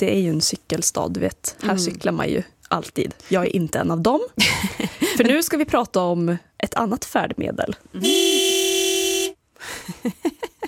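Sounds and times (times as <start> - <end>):
speech: 0.0 - 8.6, 9.9 - 10.4
car horn blast: 8.0 - 9.4.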